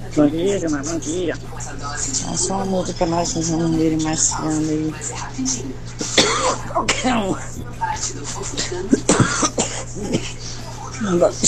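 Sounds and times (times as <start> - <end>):
low steady hum: 0.0 - 11.4
speech: 0.2 - 11.4
person coughing in rough throaty bursts: 6.0 - 7.4, 8.6 - 10.5
throat clearing: 8.9 - 10.4.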